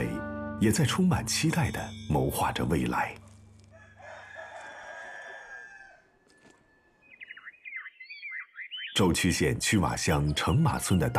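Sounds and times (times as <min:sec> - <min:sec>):
speech: 0:00.6 - 0:03.2, 0:09.0 - 0:11.1
rooster crowing among chickens beneath walnut trees in a village: 0:03.7 - 0:07.0, 0:10.2 - 0:11.1
quick high bird chirps: 0:06.3 - 0:09.4.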